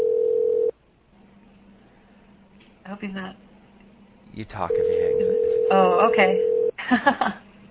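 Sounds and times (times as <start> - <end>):
electronic ring tone of an outgoing phone call: 0.0 - 0.7, 4.7 - 6.7
speech: 2.9 - 3.5, 4.4 - 7.4.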